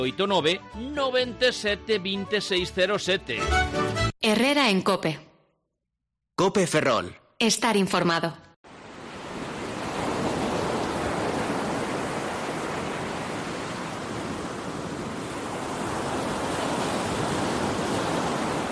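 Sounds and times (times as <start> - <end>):
speech: 0.0 - 5.3, 6.4 - 8.5
sea waves breaking on a shore: 8.7 - 18.7.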